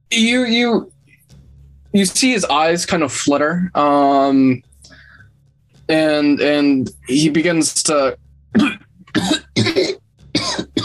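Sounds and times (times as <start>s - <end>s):
speech: 0.1s - 0.9s, 1.9s - 4.7s, 5.9s - 9.4s
harsh throaty coughing bringing up black bile: 8.6s - 10.8s.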